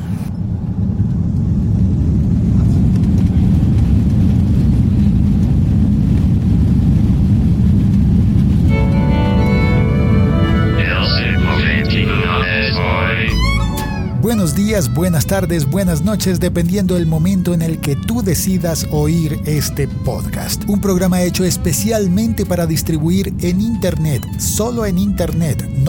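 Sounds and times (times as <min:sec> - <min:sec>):
passenger airplane cabin roar during takeoff: 0:00.0 - 0:25.8
speech: 0:14.7 - 0:25.8.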